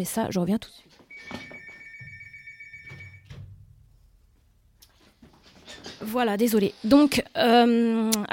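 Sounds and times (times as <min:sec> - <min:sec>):
speech: 0:00.0 - 0:01.5, 0:06.0 - 0:08.3
telephone ringing in the studio: 0:01.1 - 0:03.4.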